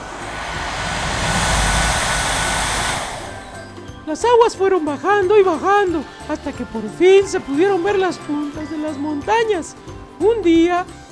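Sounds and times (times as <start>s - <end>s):
hair dryer blowing: 0.0s - 4.1s
speech: 4.1s - 11.0s.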